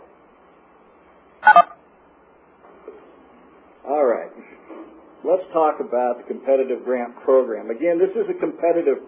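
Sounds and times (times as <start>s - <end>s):
telephone ringing over a conference line: 1.4s - 1.8s
speech: 5.4s - 9.0s.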